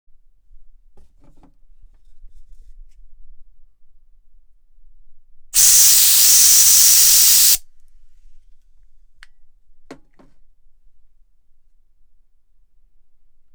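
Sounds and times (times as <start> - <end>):
compressed air can spraying: 5.6 - 7.6.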